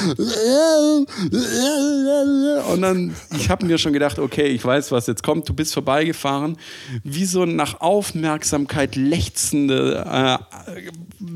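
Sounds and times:
speech: 0:00.0 - 0:11.3
person imitating a drunk person screaming along a street in Nuremberg: 0:00.1 - 0:03.1.

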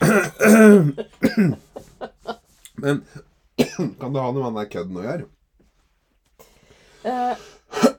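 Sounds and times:
throat clearing: 0:00.0 - 0:01.6
person coughing after choking on powdered sugar: 0:00.0 - 0:01.7, 0:03.6 - 0:04.0, 0:07.1 - 0:07.9
speech: 0:00.1 - 0:01.6, 0:02.8 - 0:03.2, 0:04.1 - 0:05.4, 0:07.0 - 0:07.9.

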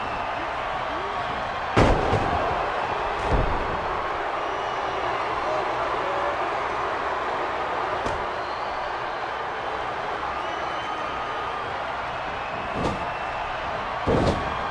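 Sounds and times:
crowd roar: 0:00.0 - 0:14.6
wrestler slammed onto wrestling mat with belly-to-belly throw: 0:01.7 - 0:02.5, 0:14.0 - 0:14.6.

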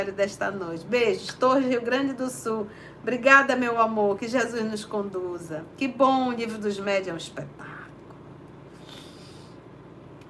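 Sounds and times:
speech: 0:00.0 - 0:07.7
quiet hum: 0:00.0 - 0:10.2
soft airy nasal sniff: 0:08.7 - 0:09.6.

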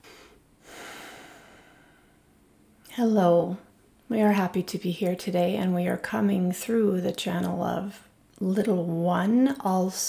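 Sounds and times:
deep breaths taken slowly: 0:00.0 - 0:02.4
speech: 0:03.0 - 0:10.0.

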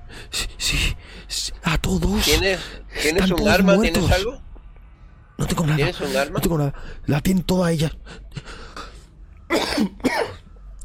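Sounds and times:
speech: 0:01.9 - 0:04.5, 0:05.4 - 0:08.6, 0:09.8 - 0:10.1
breathing: 0:06.8 - 0:07.1, 0:08.0 - 0:09.1
person coughing harshly: 0:09.5 - 0:10.5.

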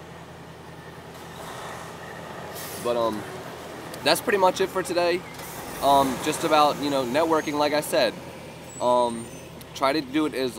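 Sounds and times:
broadband road noise: 0:00.0 - 0:10.5
heavy vehicle engine drone passing: 0:00.0 - 0:10.5
speech: 0:02.8 - 0:03.4, 0:04.0 - 0:10.5.

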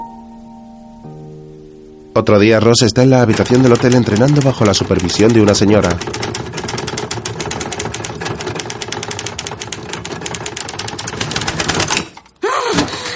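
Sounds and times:
low wavering tone: 0:00.0 - 0:02.2
speech: 0:02.2 - 0:06.4
rapid typing on a typewriter with a small keyboard: 0:03.0 - 0:12.4.

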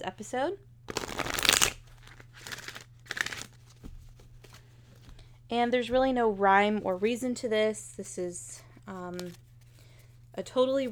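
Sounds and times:
speech: 0:00.0 - 0:01.0, 0:05.5 - 0:09.4, 0:10.4 - 0:10.9
deck of oracle cards being shuffled: 0:00.9 - 0:05.2, 0:08.9 - 0:09.9.

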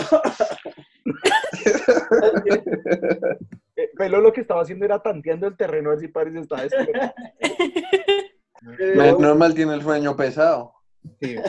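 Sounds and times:
person imitating coughing: 0:00.0 - 0:03.4
laughter: 0:00.0 - 0:03.5, 0:06.6 - 0:08.2, 0:11.2 - 0:11.4
speech: 0:01.6 - 0:11.4.

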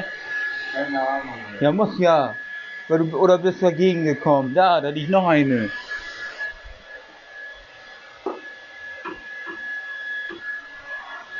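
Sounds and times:
hair dryer blowing with a high-pitched whine: 0:00.0 - 0:11.3
speech: 0:00.8 - 0:05.8.

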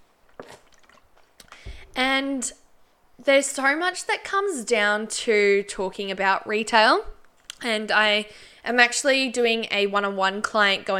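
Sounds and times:
person sipping water: 0:00.3 - 0:02.0
speech: 0:02.0 - 0:02.6, 0:03.2 - 0:10.9.

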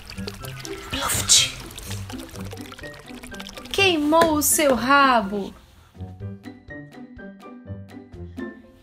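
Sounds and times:
hot water pouring and splashing into a cauldron: 0:00.0 - 0:05.6
speech: 0:01.2 - 0:03.0, 0:03.9 - 0:05.6.

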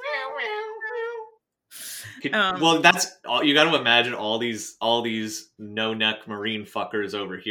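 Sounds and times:
person imitating cat meows: 0:00.0 - 0:01.3
breathy vocal burst: 0:01.7 - 0:02.4
speech: 0:02.2 - 0:07.4.

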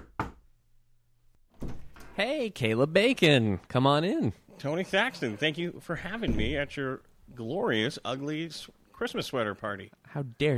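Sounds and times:
knocking on a door as a guest arrives at a Christmas sweater party: 0:00.0 - 0:00.4
speech: 0:02.2 - 0:10.5.

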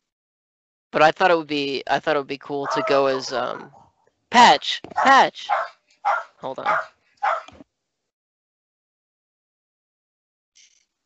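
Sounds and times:
speech: 0:00.9 - 0:05.8, 0:06.4 - 0:07.4
dog barking: 0:02.6 - 0:03.8, 0:04.9 - 0:07.6.

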